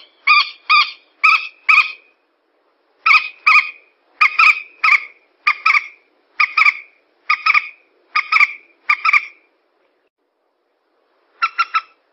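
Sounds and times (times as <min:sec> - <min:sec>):
yellow-vented bulbul calling: 0:00.0 - 0:02.2, 0:03.0 - 0:09.5, 0:11.4 - 0:12.1.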